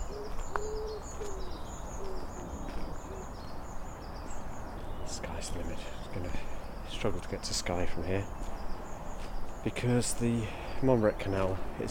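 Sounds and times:
dove or pigeon cooing: 0.0 - 3.4
steady outdoor noise: 0.0 - 11.8
speech: 7.0 - 8.4, 9.6 - 11.8.

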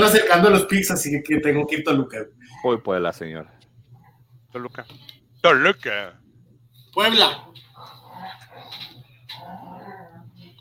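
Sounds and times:
speech: 0.0 - 3.6, 4.5 - 6.2, 7.0 - 7.9
steady low hum: 0.0 - 10.5
dogs fighting with snarls and yelping whimpers: 7.4 - 10.5.

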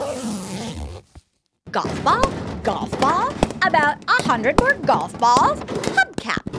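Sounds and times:
rummaging through a pouch in search of a pencil: 0.0 - 1.2
speech: 1.7 - 6.1.

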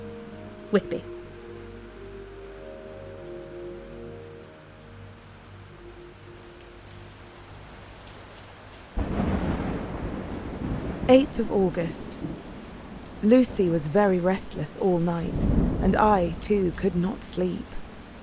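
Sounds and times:
steady heavy rain: 0.0 - 18.2
speech: 0.7 - 1.2, 11.1 - 12.5, 13.2 - 17.8
sudden loud crack of thunder: 9.0 - 13.1
long low rolling rumble of thunder: 9.0 - 13.2, 15.3 - 16.1.

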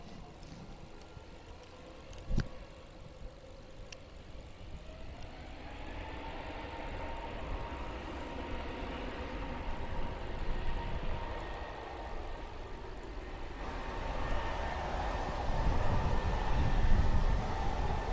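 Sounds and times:
A321 airliner engines taxiing down the runway before takeoff: 0.0 - 18.1.

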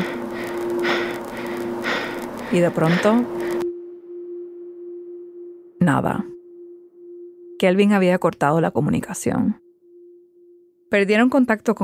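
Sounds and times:
heavy rhythmic breathing over a phone or radio line: 0.0 - 3.7
steady electrical hum: 0.0 - 8.4
speech: 2.5 - 3.4, 5.8 - 6.3, 7.6 - 9.6, 10.9 - 11.8.

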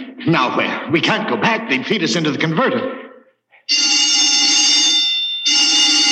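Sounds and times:
speech: 0.3 - 3.0
shrill electronic alarm blaring with a harsh buzzing tone: 3.7 - 6.1.

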